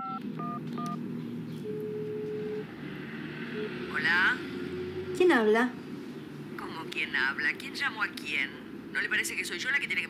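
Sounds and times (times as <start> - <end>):
touch-tone keypad beeps as a phone number is dialed: 0.0 - 1.0
long steady phone tone: 1.6 - 5.2
speech: 5.2 - 5.8, 7.0 - 10.0.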